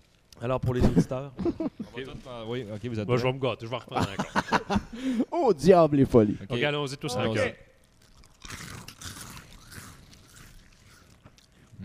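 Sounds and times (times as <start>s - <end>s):
speech: 0.4s - 7.7s
laughter: 0.8s - 2.0s, 3.9s - 5.2s
person chewing a crunchy sweet treat: 7.8s - 11.8s.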